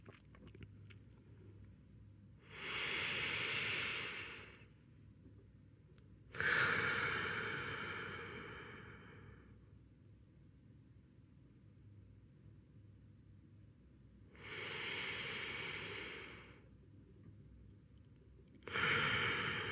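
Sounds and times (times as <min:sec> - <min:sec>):
slow deep breathing during a guided relaxation exercise: 0:02.4 - 0:04.8, 0:06.4 - 0:09.6, 0:14.4 - 0:16.7, 0:18.6 - 0:19.7.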